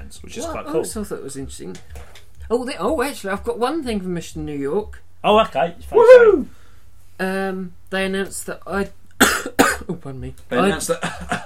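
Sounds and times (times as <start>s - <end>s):
speech: 0.1s - 6.6s, 7.2s - 9.0s, 9.9s - 11.4s
person coughing: 9.2s - 9.9s, 10.9s - 11.4s.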